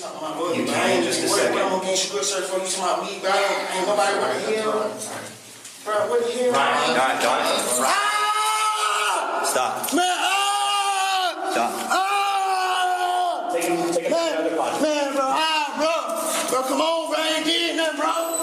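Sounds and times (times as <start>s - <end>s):
speech: 0.2s - 8.1s, 9.4s - 10.1s, 13.5s - 18.3s
man screaming and wailing in a courtroom: 7.8s - 13.5s.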